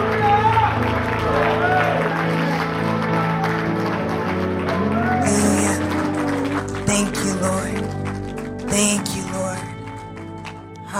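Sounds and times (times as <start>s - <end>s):
crowd clapping: 0.0s - 10.9s
sustained organ-like music: 0.0s - 10.9s.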